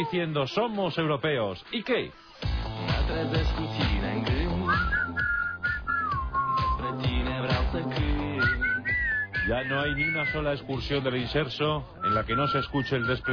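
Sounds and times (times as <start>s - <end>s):
speech: 0.0s - 3.9s, 9.5s - 13.3s
steady rhythmic backing: 0.1s - 13.3s
several people whistling a melody in unison: 4.6s - 7.1s, 8.3s - 10.5s, 12.0s - 13.3s.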